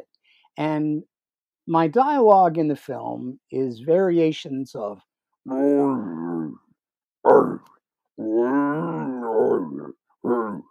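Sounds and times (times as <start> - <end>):
speech: 0.6 - 6.2, 7.2 - 9.9
man's voice imitating a growling roaring creature: 5.5 - 10.6.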